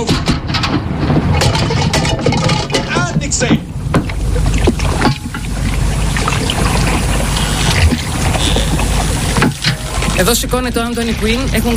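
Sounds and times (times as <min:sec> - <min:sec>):
sharp knocks: 0:00.0 - 0:05.6, 0:07.6 - 0:10.1
fishing boat engine rumble on water: 0:00.0 - 0:11.7
water splashing and sloshing: 0:00.0 - 0:11.7
speech: 0:10.2 - 0:11.7.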